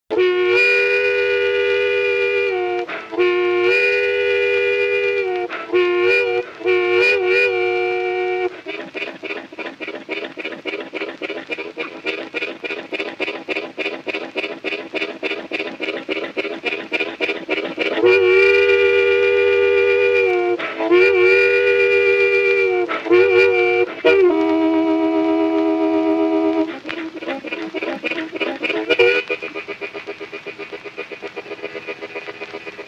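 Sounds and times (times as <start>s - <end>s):
harmonica imitating a train: 0.1s - 32.8s.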